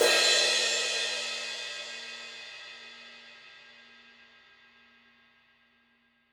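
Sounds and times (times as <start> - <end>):
crash cymbal one-shot hit: 0.0 - 3.3.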